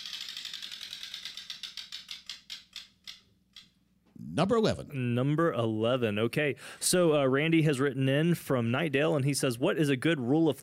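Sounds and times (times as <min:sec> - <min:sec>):
spun prize wheel ticking: 0:00.0 - 0:03.7
speech: 0:04.2 - 0:10.6.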